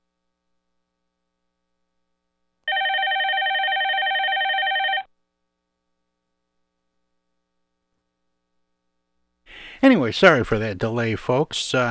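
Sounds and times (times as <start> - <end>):
telephone ringing with an incoming call: 2.7 - 5.1
speech: 9.8 - 11.8.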